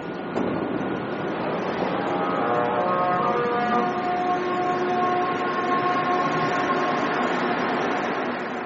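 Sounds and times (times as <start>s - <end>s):
Montreal Metro MR63 train accelerating: 0.0s - 8.6s
MR63 train motors producing singing harmonic tones: 1.7s - 8.6s.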